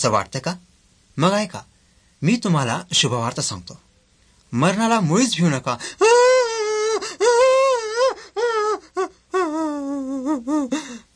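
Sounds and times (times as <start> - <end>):
speech: 0.0 - 3.9, 4.5 - 6.4
sobbing bursts broken by short gasps: 5.7 - 11.1
people wailing and crying in mourning over a death: 6.0 - 11.0.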